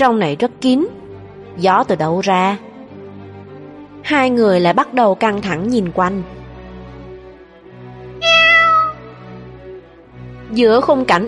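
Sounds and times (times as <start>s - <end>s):
speech: 0.0s - 1.0s, 1.6s - 2.7s, 4.0s - 6.4s, 10.6s - 11.2s
black cat meowing: 8.2s - 9.2s.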